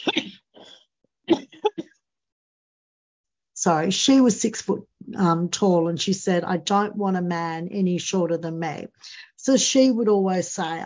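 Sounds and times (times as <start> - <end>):
person coughing: 0.0 - 0.7, 1.3 - 1.8
speech: 3.6 - 10.8.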